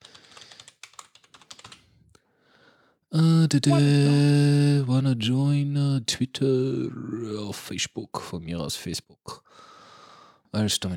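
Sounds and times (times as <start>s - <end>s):
typing on a computer keyboard: 0.0s - 1.8s
speech: 3.1s - 9.7s, 10.5s - 10.9s.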